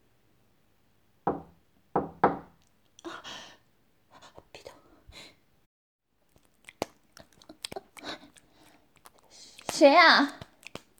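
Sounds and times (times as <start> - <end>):
knocking on a wooden office door: 1.3 - 2.5
speech: 9.8 - 10.4.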